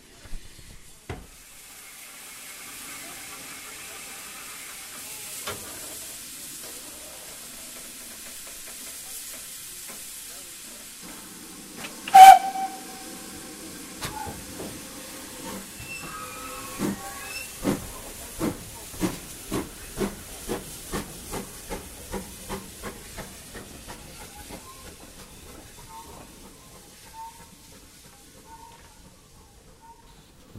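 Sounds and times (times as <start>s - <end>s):
stopped steam locomotive hissing at Parkend station: 0.1s - 30.5s
sharp steam locomotive whistle blast: 12.1s - 13.4s.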